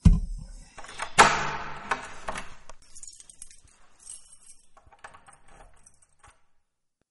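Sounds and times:
door shut in a hurry with a hard thud: 0.8s - 2.6s
metallic keys jingling and clinking: 2.0s - 6.7s.

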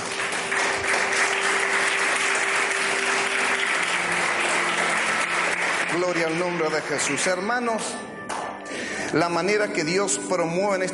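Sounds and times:
congregation clapping: 0.0s - 7.7s
speech: 6.0s - 8.1s, 9.1s - 10.9s.

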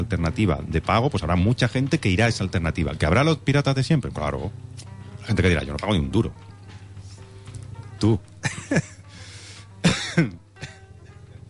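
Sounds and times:
speech: 0.0s - 6.4s, 8.0s - 8.9s, 10.2s - 10.4s
laughter: 8.4s - 9.0s
person coughing: 9.8s - 10.9s.

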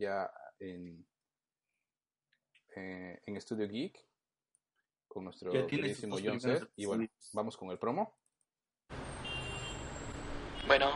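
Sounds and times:
speech: 0.0s - 1.1s, 2.8s - 4.1s, 5.1s - 8.2s, 10.7s - 10.9s
road traffic rumble of passing vehicles: 8.9s - 10.9s.

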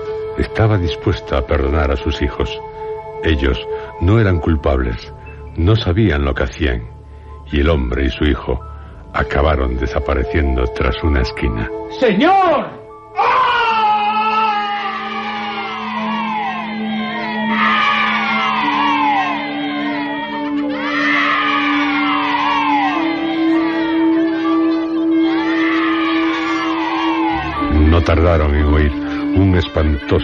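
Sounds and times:
speech: 0.4s - 6.9s, 7.5s - 13.4s, 28.1s - 30.2s
children screaming in long falling wails: 13.1s - 30.2s
loud piercing scream: 13.2s - 24.4s, 25.2s - 27.8s.

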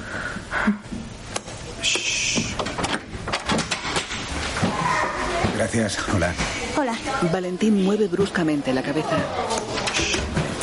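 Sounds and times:
speech: 0.7s - 0.9s, 5.8s - 9.7s
door creaking: 2.3s - 5.6s, 9.5s - 10.6s
door being unlatched and pulled open from inside: 2.6s - 4.2s.

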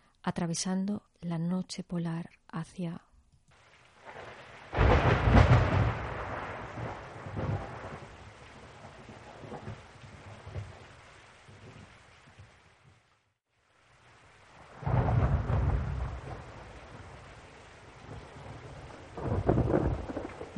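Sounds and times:
speech: 0.3s - 3.1s
steady rain hissing in a thunderstorm: 3.5s - 20.5s
loud thunder rumbling: 4.0s - 12.6s, 14.5s - 20.5s.

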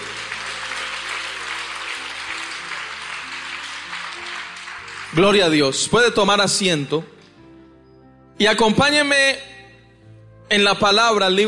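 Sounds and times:
audience clapping: 0.0s - 5.9s
speech: 5.2s - 7.2s, 8.4s - 9.5s, 10.5s - 11.4s.

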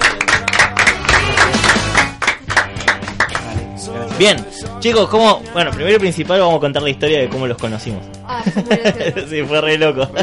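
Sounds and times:
applause from a small group during a radio program in Quilmes: 0.0s - 3.6s
speech: 4.2s - 10.2s
laughter: 8.4s - 10.2s.

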